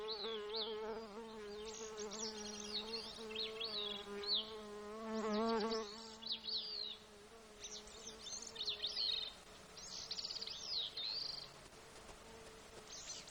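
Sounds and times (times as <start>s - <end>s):
insect buzzing in Alaska: 0.0s - 13.1s.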